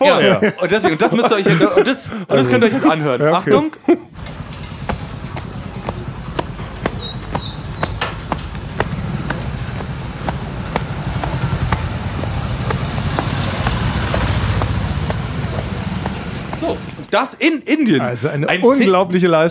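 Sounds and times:
speech: 0.0s - 4.0s, 17.1s - 19.4s
laughter: 0.0s - 8.0s
vehicle engines idling in busy Indian street traffic: 4.1s - 17.1s
vehicles passing in busy Indian street traffic: 4.1s - 17.1s.

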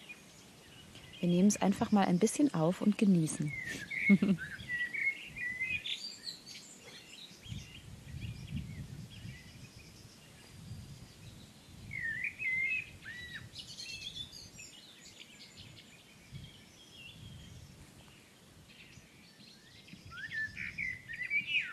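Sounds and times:
thrushes singing: 0.0s - 21.7s
speech: 1.2s - 4.6s
blackbird alarm calls: 3.2s - 7.6s, 11.9s - 14.4s, 20.1s - 21.7s.

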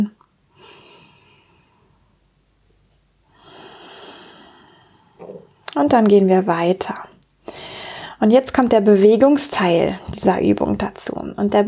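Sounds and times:
slow deep breaths during a guided breathing exercise: 0.5s - 2.2s, 3.3s - 5.6s, 7.4s - 8.2s
speech: 5.8s - 7.1s, 8.2s - 11.6s.

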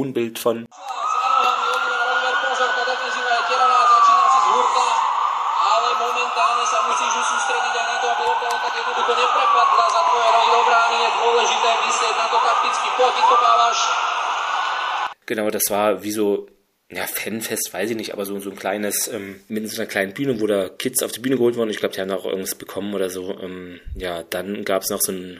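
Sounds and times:
speech: 0.0s - 1.0s, 6.3s - 14.2s, 15.3s - 25.3s
police car siren wailing: 0.7s - 15.2s.

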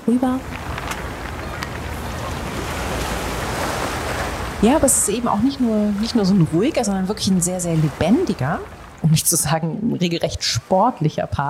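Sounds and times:
river water lapping and washing against the shore: 0.0s - 11.4s
wind: 0.0s - 11.4s
speech: 0.1s - 0.7s, 4.6s - 11.4s
faint clicks: 0.4s - 2.0s.

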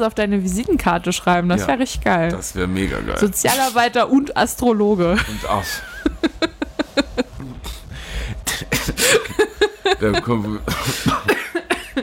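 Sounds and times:
speech: 0.0s - 6.4s, 10.0s - 11.3s
laughter: 5.2s - 7.4s, 8.7s - 12.0s
person coughing loudly: 8.4s - 9.5s, 10.7s - 12.0s.

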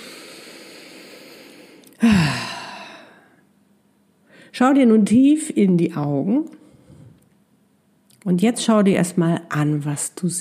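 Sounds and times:
deep breath released as a long sigh: 0.0s - 3.4s, 6.7s - 7.2s
faint hum: 0.0s - 10.3s
speech: 4.6s - 6.6s, 8.2s - 10.3s.

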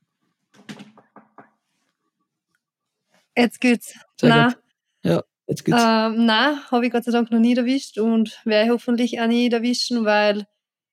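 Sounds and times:
quick knocks on wood: 0.6s - 1.6s
speech: 3.4s - 10.5s.

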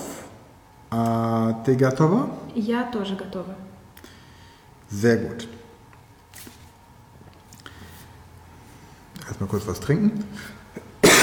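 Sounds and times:
speech: 0.9s - 3.7s, 4.9s - 5.6s, 9.4s - 10.6s
person coughing: 10.7s - 11.2s.

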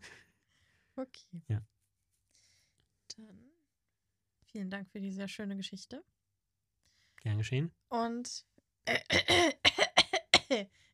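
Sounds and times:
speech: 1.0s - 1.8s, 3.2s - 3.6s, 4.5s - 6.2s, 7.2s - 9.6s, 10.5s - 10.9s
harsh coughing: 8.9s - 10.6s.

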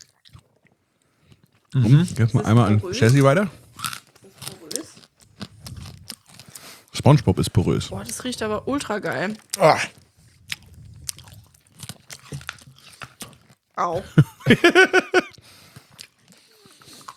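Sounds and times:
teeth biting into soft sugary candy: 0.0s - 2.3s, 3.0s - 7.4s, 9.2s - 13.7s, 15.3s - 17.1s
wet chewing of candy: 0.0s - 13.8s, 14.6s - 17.1s
speech: 1.7s - 3.6s, 7.1s - 10.0s, 13.8s - 15.3s
laughter: 14.0s - 15.4s.

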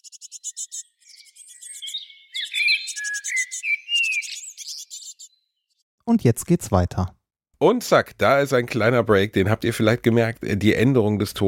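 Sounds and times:
birds chirping and singing: 0.0s - 5.8s
speech: 6.1s - 11.4s.

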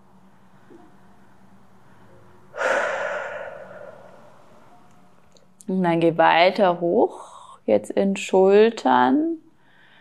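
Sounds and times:
long deep breath during a guided relaxation exercise: 1.8s - 4.7s
speech: 5.7s - 9.4s.

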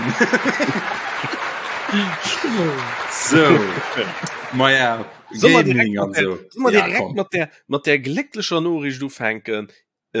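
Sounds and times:
crowd applauding: 0.0s - 7.2s
bursts of voices and laughter: 0.0s - 7.4s
speech: 0.1s - 1.0s, 1.9s - 10.1s.

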